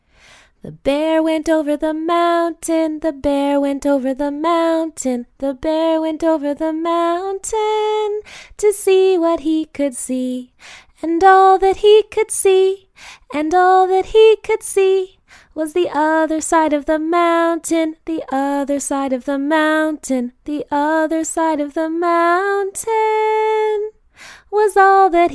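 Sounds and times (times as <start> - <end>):
woman singing in English: 0.6 - 25.3.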